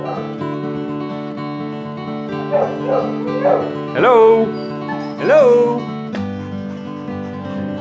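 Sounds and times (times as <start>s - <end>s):
crossbreed dog barking and whimpering: 0.0s - 0.4s, 2.4s - 5.8s
speech: 2.8s - 5.9s.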